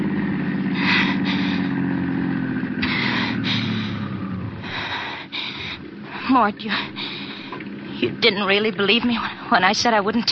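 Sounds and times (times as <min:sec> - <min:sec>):
car engine droning: 0:00.0 - 0:10.3
speech: 0:06.3 - 0:07.1, 0:08.0 - 0:10.3.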